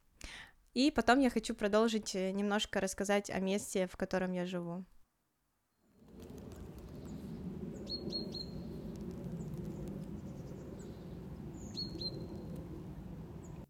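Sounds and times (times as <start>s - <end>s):
speech: 0.7s - 5.0s
steady rumble: 6.0s - 13.6s
birds chirping and singing outdoors: 6.3s - 13.6s.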